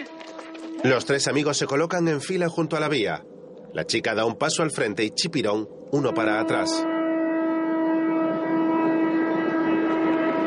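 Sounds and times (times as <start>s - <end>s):
train horn: 0.0s - 1.3s, 6.0s - 10.4s
speech: 0.8s - 6.9s.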